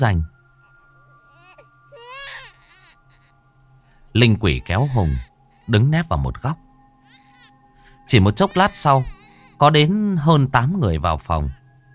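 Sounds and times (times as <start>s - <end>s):
speech: 0.0s - 0.3s, 4.2s - 6.6s, 8.1s - 11.6s
baby crying: 0.6s - 3.4s, 4.3s - 6.0s, 7.0s - 9.6s.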